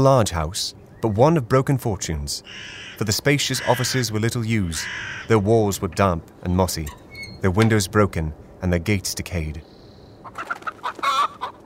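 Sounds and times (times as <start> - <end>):
speech: 0.0 - 9.7
chicken drawn-out squawk: 2.5 - 5.4, 10.2 - 11.6
chickens clucking: 3.4 - 6.0, 10.2 - 11.6.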